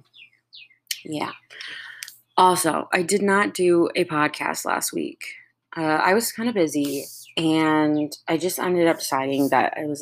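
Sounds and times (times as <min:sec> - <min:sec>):
bird chirping outside an open kitchen window: 0:00.0 - 0:02.6, 0:06.6 - 0:09.6
speech: 0:01.0 - 0:01.7, 0:02.4 - 0:09.9.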